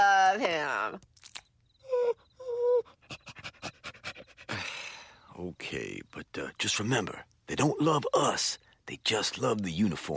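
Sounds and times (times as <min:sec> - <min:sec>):
speech: 0:00.4 - 0:01.1, 0:05.4 - 0:10.1
police dog panting: 0:02.8 - 0:04.6.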